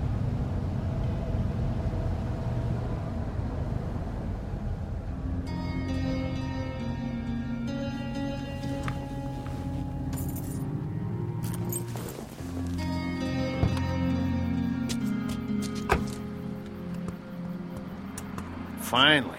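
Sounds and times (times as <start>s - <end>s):
car engine rumble driving and pulling up to a gas station booth: 0.0s - 19.3s
higher tonal sounds: 4.8s - 19.3s.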